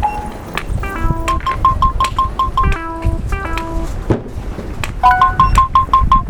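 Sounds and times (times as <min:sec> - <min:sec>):
short electronic beeps from an obstacle-detection navigation device: 0:00.0 - 0:03.8, 0:05.0 - 0:06.2
steady street noise: 0:00.0 - 0:06.2.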